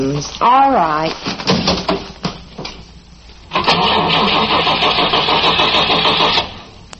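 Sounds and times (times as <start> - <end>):
speech: 0.2 - 1.9
car engine cranking on the starter: 3.5 - 6.7.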